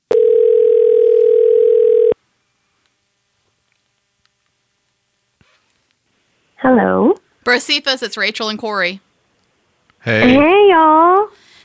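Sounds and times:
telephone ringing tone while placing a call: 0.1s - 2.2s
speech: 6.7s - 9.1s, 10.0s - 11.5s.

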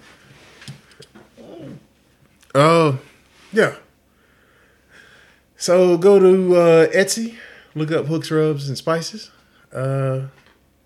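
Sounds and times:
dog whimpering: 1.4s - 1.9s
speech: 2.6s - 3.8s, 5.6s - 10.4s.

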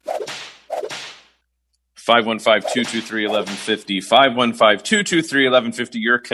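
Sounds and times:
whip cracks with hissing swish: 0.0s - 1.4s, 2.6s - 3.8s
speech: 2.1s - 6.3s.

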